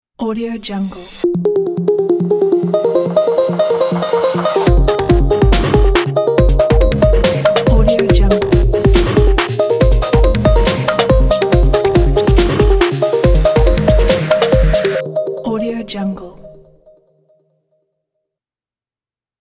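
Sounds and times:
modern noise beat for a logo intro: 0:01.3 - 0:15.1
bells in a modern logo intro: 0:01.3 - 0:17.2.

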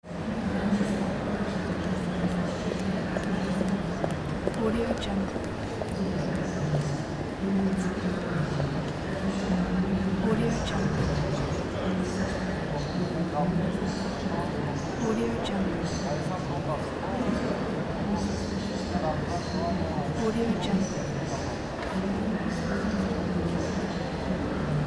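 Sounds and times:
airport ambience: 0:00.0 - 0:24.8.

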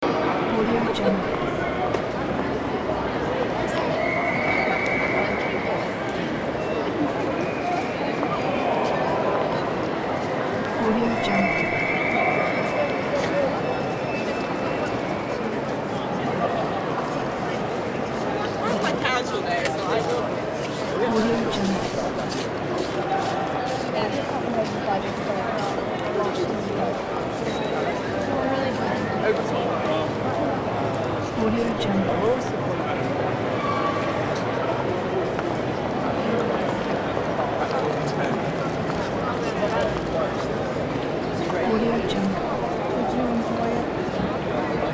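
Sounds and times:
train station ambience in London Waterloo: 0:00.0 - 0:44.9.

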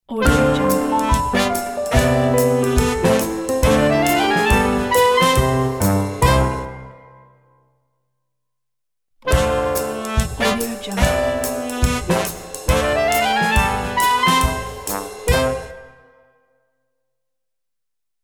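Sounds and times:
jazz ident music: 0:00.2 - 0:07.2, 0:09.3 - 0:16.0.

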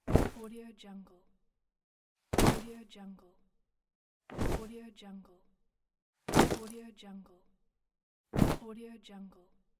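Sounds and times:
cloth dropping: 0:00.0 - 0:00.4, 0:02.3 - 0:02.7, 0:04.3 - 0:04.6, 0:06.3 - 0:06.7, 0:08.4 - 0:08.6.

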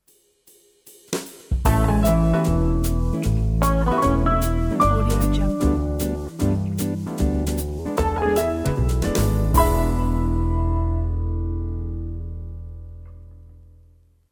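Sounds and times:
jazz logo jingle: 0:01.6 - 0:13.0.

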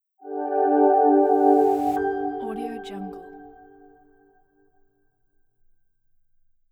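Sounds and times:
smooth soft atmospheric logo reveal sound: 0:00.2 - 0:04.0.

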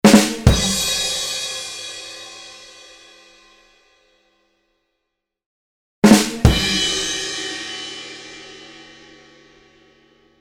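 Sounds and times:
drum accents: 0:00.0 - 0:01.6, 0:06.0 - 0:07.6.

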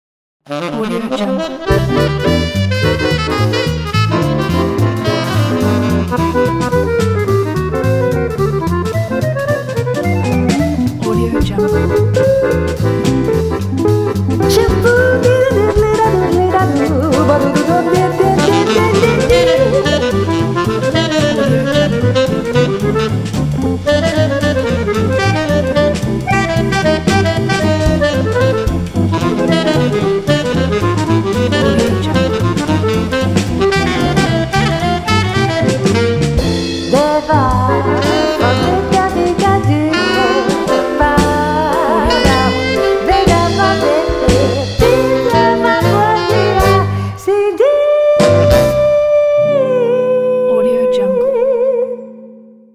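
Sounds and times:
swing jazz with saxophone: 0:00.5 - 0:51.8
person singing swing jazz vocal: 0:11.0 - 0:12.3, 0:14.4 - 0:20.2, 0:36.9 - 0:52.2.

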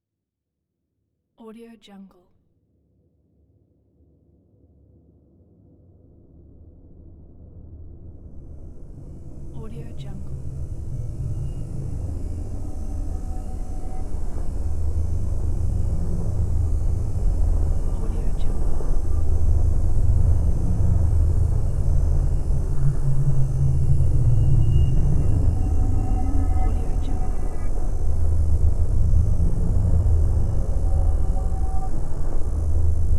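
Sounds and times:
drone ambience: 0:07.8 - 0:33.1.

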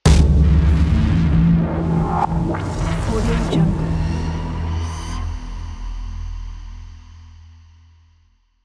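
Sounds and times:
hybrid trailer cinematic suspense hit: 0:00.0 - 0:05.7.

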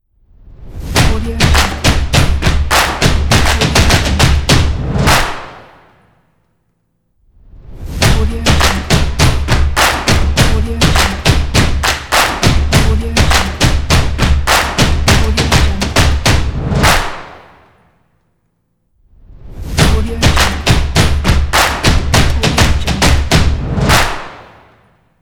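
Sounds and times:
drums in a logo: 0:00.6 - 0:05.5, 0:07.7 - 0:17.1, 0:19.5 - 0:24.1
claps in a logo: 0:01.0 - 0:06.0, 0:08.0 - 0:17.8, 0:19.8 - 0:24.9.

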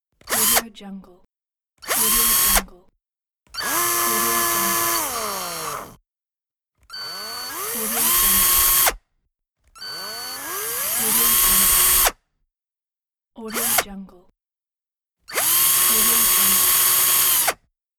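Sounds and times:
screwdriver sounds: 0:00.2 - 0:00.6, 0:01.8 - 0:02.7, 0:03.6 - 0:06.0, 0:06.9 - 0:09.0, 0:09.8 - 0:12.2, 0:13.5 - 0:13.9, 0:15.3 - 0:17.6.

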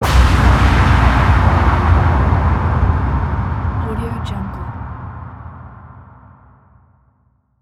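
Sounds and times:
powerful war explosion: 0:00.0 - 0:05.5.

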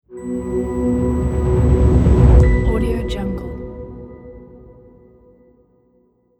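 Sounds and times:
powerful atmospheric logo reveal sting: 0:00.2 - 0:05.2.

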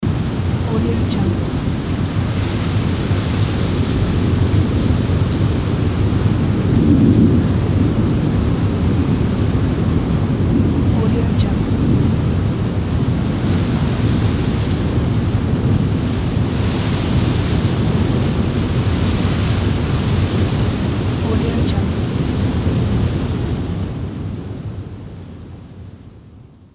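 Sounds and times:
storm wind blowing: 0:00.0 - 0:24.7.

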